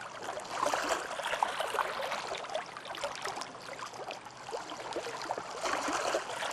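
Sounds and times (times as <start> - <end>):
water at a dock: 0.0 - 6.5.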